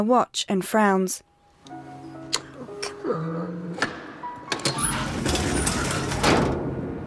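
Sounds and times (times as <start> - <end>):
speech: 0.0 - 1.8
truck back door unlatched and opened by two men: 3.8 - 6.8.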